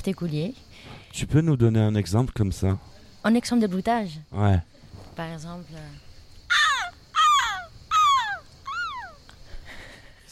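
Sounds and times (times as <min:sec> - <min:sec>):
speech: 0:00.0 - 0:06.1
female foley performer imitating seagull squawking cries: 0:06.5 - 0:09.2.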